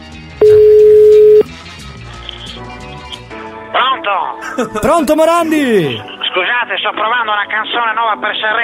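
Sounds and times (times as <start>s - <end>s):
telephone keypad tones as a number is dialed: 0.4s - 1.5s
laughter: 4.4s - 6.4s
speech: 4.6s - 6.1s, 6.7s - 8.6s.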